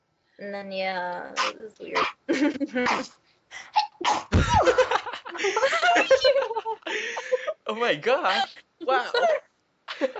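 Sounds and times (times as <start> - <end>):
speech: 0.4 - 9.4, 10.0 - 10.1
laughter: 2.3 - 2.9, 4.4 - 7.6, 9.1 - 10.1
person sneezing: 2.8 - 4.6.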